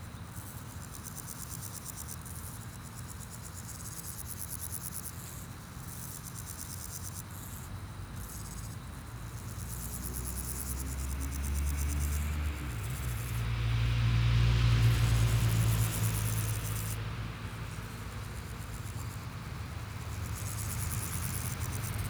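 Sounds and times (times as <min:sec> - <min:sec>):
grasshoppers stridulating in high pulsed buzzy bursts: 0:00.0 - 0:22.0
low rumble of traffic on Chaussée de Tervueren in Brussels: 0:07.7 - 0:22.0.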